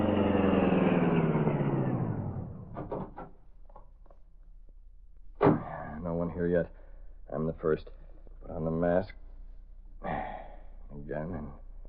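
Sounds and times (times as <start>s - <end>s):
high-powered car engine roaring at top speed: 0.0s - 2.8s
speech: 6.4s - 9.2s, 11.0s - 11.6s.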